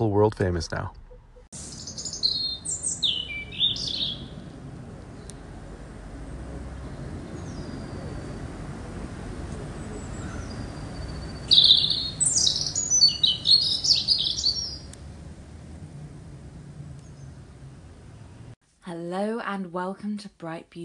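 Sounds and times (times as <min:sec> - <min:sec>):
speech: 0:00.0 - 0:01.6, 0:19.8 - 0:20.8
steady low outdoor rumble: 0:00.0 - 0:18.6
birds tweeting in high chirps: 0:01.6 - 0:15.0, 0:16.9 - 0:18.5.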